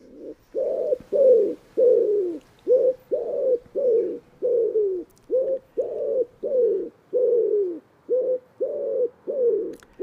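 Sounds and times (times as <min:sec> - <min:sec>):
common wood pigeon cooing: 0:00.0 - 0:10.0.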